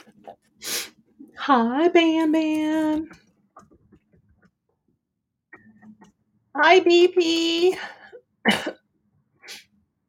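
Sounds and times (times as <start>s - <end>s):
speech: 1.5s - 3.2s, 6.6s - 8.8s
person coughing harshly: 8.5s - 8.8s.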